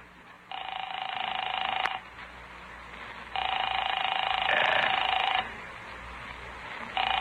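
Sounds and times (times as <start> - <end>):
telephone ringback tone: 0.5 - 2.0, 3.3 - 5.6, 7.0 - 7.1.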